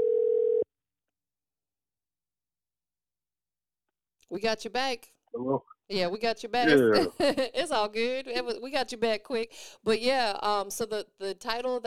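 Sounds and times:
telephone dial tone while calling back a disconnected caller: 0.0s - 0.6s
speech: 4.3s - 11.8s.

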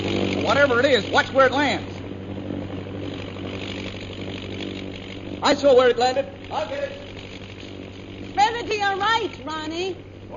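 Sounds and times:
airplane propeller engine droning overhead: 0.0s - 10.3s
speech: 0.5s - 1.9s, 5.4s - 7.0s, 8.6s - 10.3s.

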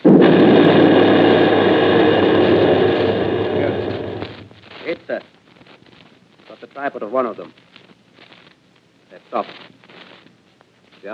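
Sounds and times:
ship's gun firing a single shot with a roaring rumble: 0.0s - 4.6s
speech: 6.8s - 7.6s, 9.2s - 9.7s.

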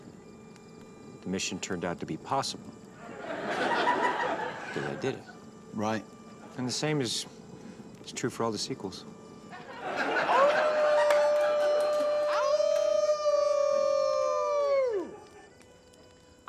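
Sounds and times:
speech: 1.2s - 2.8s, 4.8s - 7.4s, 8.1s - 9.2s
laughter: 3.0s - 5.4s, 9.5s - 11.2s
people imitating a wolf howl: 10.0s - 15.4s.

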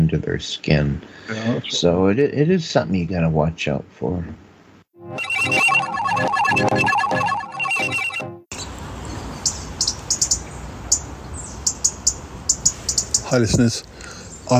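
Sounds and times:
steady outdoor noise: 0.0s - 4.9s, 8.5s - 14.5s
speech: 0.1s - 4.4s, 13.3s - 13.9s
bright musical jingle: 5.0s - 8.5s.

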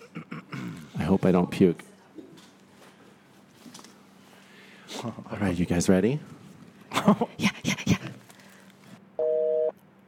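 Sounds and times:
speech: 1.1s - 1.9s, 5.0s - 6.4s, 7.0s - 8.2s
regular telephone busy signal on a call to a landline: 9.2s - 9.7s.

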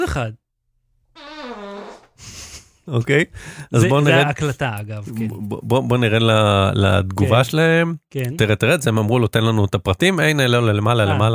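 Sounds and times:
speech: 0.0s - 0.4s, 2.9s - 11.3s
loud drawn-out fart with buzzing pitch-wavering tone: 1.2s - 2.2s.

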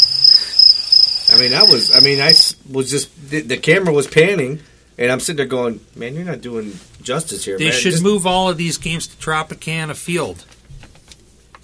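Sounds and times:
crickets chirping sound effect: 0.0s - 2.6s
speech: 1.3s - 10.6s.

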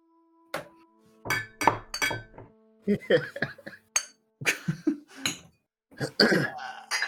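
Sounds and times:
glasses clinking during a toast: 1.3s - 2.4s, 4.0s - 4.2s, 5.2s - 5.5s
laughter: 2.9s - 5.1s
throaty vocal noises: 6.0s - 7.0s.

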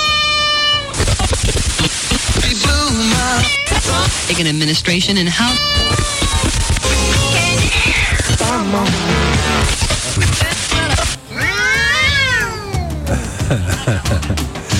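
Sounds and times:
cat meowing: 0.0s - 1.0s, 3.1s - 4.1s, 5.3s - 8.3s, 11.3s - 13.0s
cat yowling: 0.0s - 1.0s, 3.2s - 4.1s, 5.3s - 6.6s, 11.3s - 13.1s
dense continuous background: 0.9s - 14.7s
speech: 4.3s - 6.2s, 8.7s - 10.5s
laughter: 12.9s - 14.7s.

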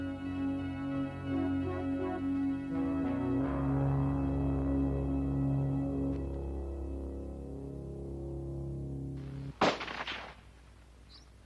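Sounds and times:
steady low hum: 0.0s - 9.6s
hunter's rifle firing at a wildebeest in Botswana: 9.5s - 10.4s.

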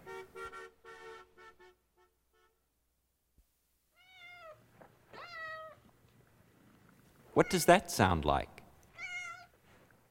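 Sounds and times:
cat meowing: 3.9s - 5.9s, 8.9s - 9.6s
person asking a short question: 7.4s - 8.6s
speech: 7.4s - 8.6s.

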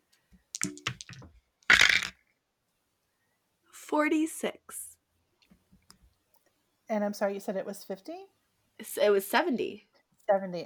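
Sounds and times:
dice rolling on a table: 0.6s - 2.2s
speech: 3.9s - 4.9s, 6.9s - 10.6s.

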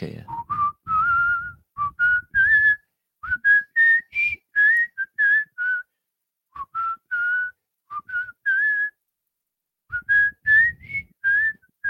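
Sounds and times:
man whistling a tune: 0.2s - 5.9s, 6.5s - 9.0s, 9.9s - 11.8s.

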